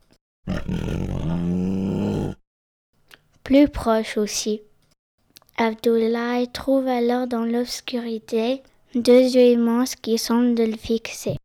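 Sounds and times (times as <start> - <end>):
menacing creature growl swelling into a deep rumbling roar: 0.5 - 2.4
speech: 3.5 - 4.7, 5.6 - 11.4.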